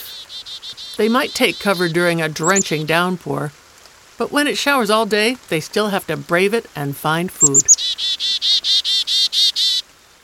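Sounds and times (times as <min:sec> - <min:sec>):
chickadee harsh buzzy calls: 0:00.0 - 0:03.0, 0:07.4 - 0:09.8
speech: 0:01.0 - 0:03.6, 0:04.2 - 0:07.8.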